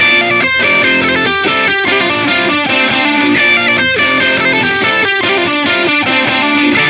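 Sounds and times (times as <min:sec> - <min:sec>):
pop drive music: 0:00.1 - 0:06.8.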